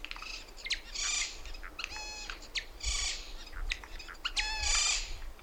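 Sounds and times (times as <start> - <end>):
Eurasian jay Garrulus glandarius harsh rasping screeches: 0.2 - 5.3.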